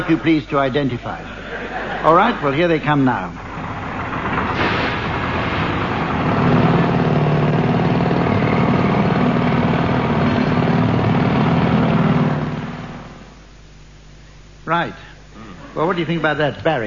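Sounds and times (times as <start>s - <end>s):
speech: 0.0s - 1.4s, 2.0s - 3.4s, 14.7s - 15.1s, 15.8s - 16.8s
laughter: 0.0s - 2.9s
roadworks machinery drone with heavy engine rumble: 3.3s - 13.4s
harsh continuous clatter of roadworks drilling: 3.4s - 13.3s.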